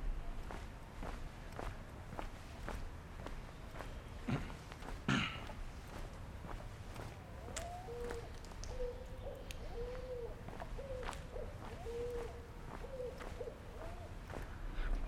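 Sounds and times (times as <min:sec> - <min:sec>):
outdoor hiss: 0:00.0 - 0:15.0
picazuro pigeon cooing: 0:07.4 - 0:14.4.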